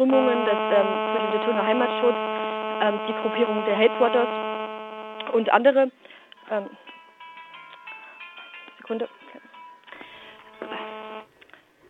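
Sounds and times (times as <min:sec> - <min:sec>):
speech: 0:00.0 - 0:04.6, 0:05.3 - 0:06.9, 0:08.9 - 0:09.2
electronic telephone ring of an incoming call: 0:00.0 - 0:05.2, 0:10.2 - 0:11.3.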